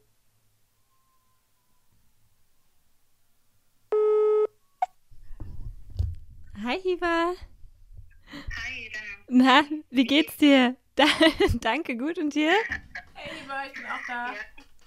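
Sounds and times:
ringback tone of an outgoing telephone call: 4.0 - 4.6
speech: 6.8 - 7.5, 9.3 - 14.6
laughter: 12.6 - 14.8
rough crackling telephone line noise: 12.8 - 14.8.

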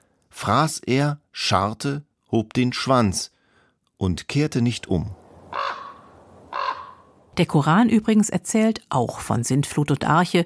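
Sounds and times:
speech: 0.4 - 3.4, 4.0 - 5.2, 7.4 - 10.4
raven croaking: 5.1 - 7.3.

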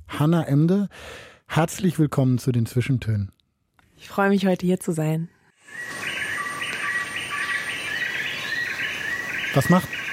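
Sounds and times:
speech: 0.2 - 3.4, 4.0 - 6.1, 9.5 - 10.0
jungle insects buzzing and trilling: 5.6 - 10.1
jungle birds chirping and calling: 5.7 - 10.1.

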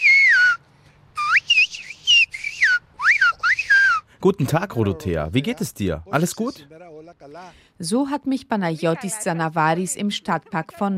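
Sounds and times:
person whistling a greeting in Greek whistled language: 0.0 - 0.6, 1.2 - 4.1
speech: 4.2 - 10.9.

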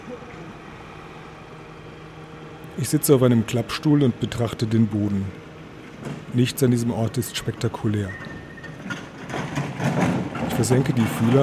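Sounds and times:
street traffic rumbling heard from a traffic island on a Saturday morning: 0.0 - 11.4
speech: 2.8 - 5.5, 6.3 - 8.3, 10.6 - 11.4.

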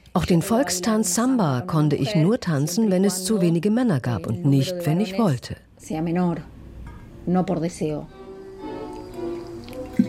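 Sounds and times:
speech: 0.2 - 6.5, 7.2 - 8.2
hot water poured into a mate cup: 8.8 - 10.0.

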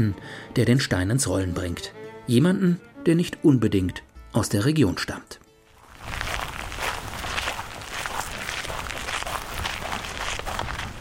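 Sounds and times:
speech: 0.0 - 5.4
footsteps walking along a path on a rural property in Portugal: 5.6 - 10.9.

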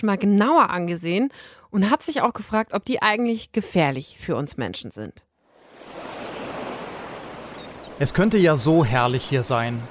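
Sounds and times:
speech: 0.0 - 6.0, 8.0 - 9.8
soft sea waves washing onto a beach: 5.6 - 9.8.

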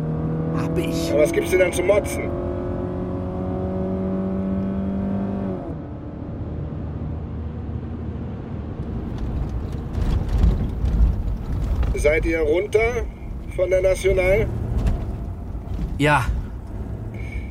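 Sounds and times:
rushing roar of road noise: 0.0 - 4.0, 7.1 - 17.4
fast car engine whining as it races past: 0.0 - 17.4
speech: 0.6 - 2.4, 12.0 - 14.6, 16.0 - 16.4.

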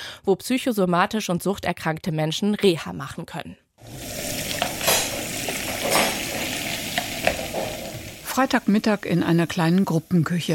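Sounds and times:
speech: 0.2 - 4.2, 8.4 - 10.5
tap water running into a sink basin: 3.8 - 10.1.

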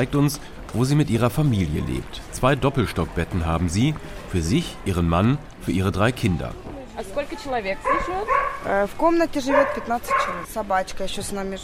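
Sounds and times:
speech: 0.0 - 11.6
dog barking: 7.8 - 8.8, 9.4 - 10.5.

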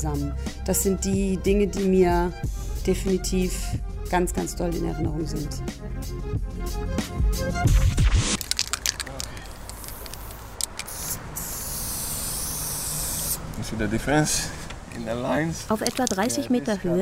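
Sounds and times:
speech: 0.0 - 8.4, 13.6 - 16.9
aerosol spray paint can hissing: 9.6 - 13.4.

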